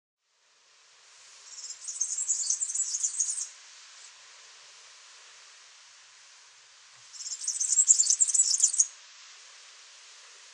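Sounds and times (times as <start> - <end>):
faint background hiss: 0.2 - 10.5
firecrest song: 1.5 - 3.5, 7.2 - 8.8.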